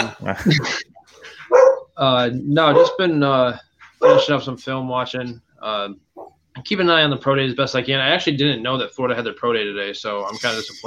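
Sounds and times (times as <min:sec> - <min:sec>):
speech: 0:00.2 - 0:00.9, 0:01.5 - 0:06.0, 0:06.6 - 0:10.8
dog barking: 0:01.5 - 0:01.9, 0:02.7 - 0:03.0, 0:04.0 - 0:04.4.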